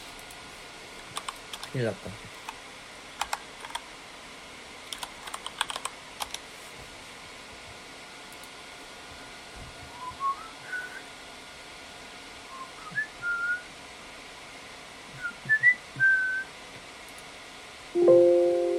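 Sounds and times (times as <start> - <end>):
steady fan-like hiss: 0.0 - 18.7
speech: 1.7 - 2.4
computer keyboard key clicks: 4.9 - 6.4
faint brief whistle-like tone: 9.9 - 11.1, 12.5 - 13.7, 15.2 - 16.5.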